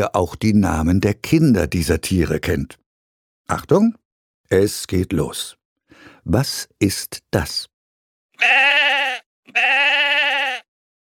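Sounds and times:
speech: 0.0 - 2.8, 3.5 - 5.6, 6.2 - 7.7, 8.4 - 10.0
sheep bleating: 8.4 - 10.7.

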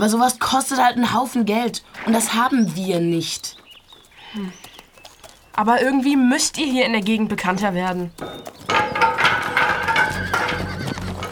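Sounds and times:
speech: 0.0 - 3.6, 4.3 - 4.7, 5.6 - 8.6
galloping horse hoofbeats: 1.1 - 11.3
frightened horses neighing: 1.8 - 11.3.

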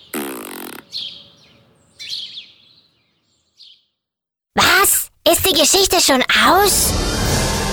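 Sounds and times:
loud buzzy fart sound effect: 0.1 - 0.8
speech: 0.9 - 1.1, 5.3 - 7.6.

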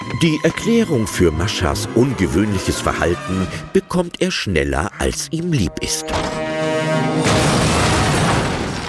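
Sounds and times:
speech: 0.2 - 6.4
cooking pot bursting with a loud boom: 7.2 - 8.8
spattering and crashing debris: 7.2 - 8.8.

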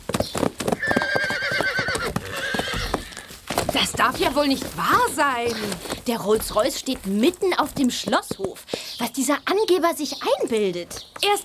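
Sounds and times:
two horses galloping with clip-clop of hooves: 0.0 - 11.4
horse neighing: 0.8 - 3.3
speech: 3.8 - 11.4.

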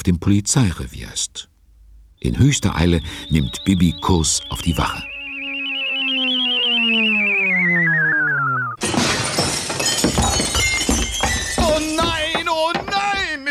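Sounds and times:
speech: 0.0 - 1.5, 2.2 - 5.1
long loud tone falling in pitch: 2.2 - 8.8
window pane shattering: 8.8 - 13.4.

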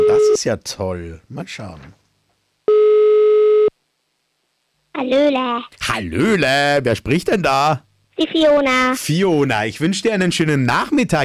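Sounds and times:
speech: 0.4 - 2.0, 5.0 - 11.2
telephone ringing tone while placing a call: 2.7 - 3.7.

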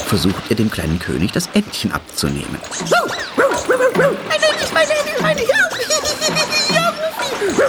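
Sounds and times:
dog jumping into water and splashing with its paws: 0.0 - 7.6
laughter: 0.0 - 7.6
speech: 0.1 - 6.4
dog yipping and barking excitedly: 2.6 - 7.6.

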